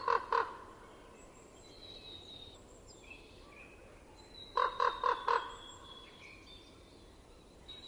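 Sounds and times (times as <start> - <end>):
common raven croaking in winter: 0.0 - 0.8, 4.6 - 5.6.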